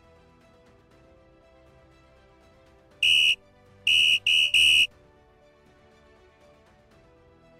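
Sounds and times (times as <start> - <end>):
shrill referee whistle signalling the start of play in a water polo game: 3.0 - 4.9.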